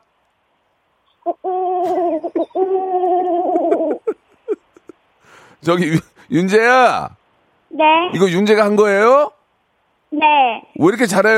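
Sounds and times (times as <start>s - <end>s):
child imitating a pigeon's cooing: 1.2s - 4.0s, 7.7s - 8.2s, 10.1s - 10.7s
laughter: 1.8s - 5.0s
speech: 2.2s - 3.0s, 5.6s - 7.2s, 7.8s - 9.3s, 10.2s - 11.3s.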